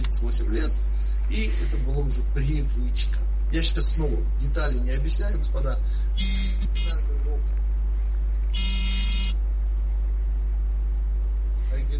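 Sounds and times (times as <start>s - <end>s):
steady low hum: 0.0s - 11.9s
speech: 0.1s - 7.0s
phone vibrating with an incoming call: 6.2s - 7.0s, 8.5s - 9.4s.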